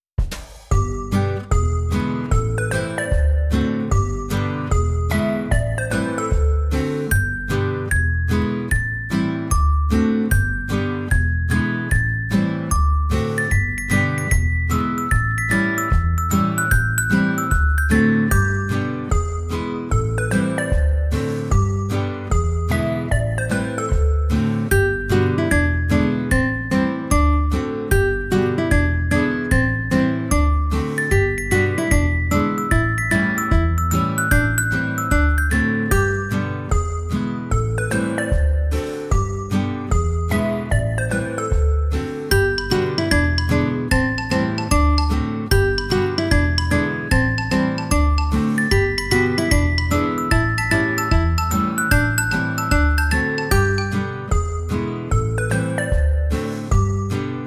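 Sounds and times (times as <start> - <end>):
instrumental music: 0.2 - 57.4.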